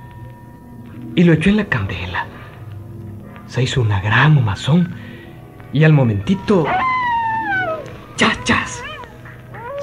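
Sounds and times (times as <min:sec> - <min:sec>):
speech: 0:01.2 - 0:02.4, 0:03.5 - 0:05.0, 0:05.7 - 0:06.9, 0:08.2 - 0:08.9
voice imitating a coyote howl: 0:06.7 - 0:09.8.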